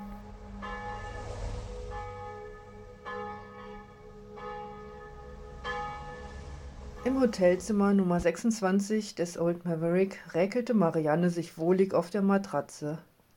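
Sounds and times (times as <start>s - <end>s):
wedding bells pealing: 0.0s - 8.2s
speech: 7.1s - 13.1s.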